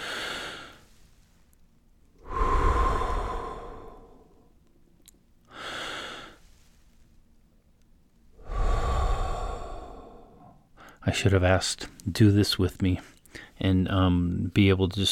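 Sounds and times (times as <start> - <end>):
slow deep breaths with long airy exhales: 0.0 - 1.4, 2.2 - 4.6, 5.5 - 7.0, 8.4 - 11.0, 13.0 - 13.6
speech: 11.0 - 15.1.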